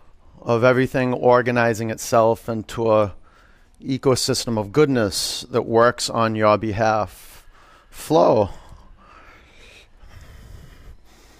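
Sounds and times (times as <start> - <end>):
speech: 0.5 - 3.2, 3.8 - 7.3, 7.9 - 8.6
steady nasal breathing: 3.2 - 3.8, 7.2 - 11.3.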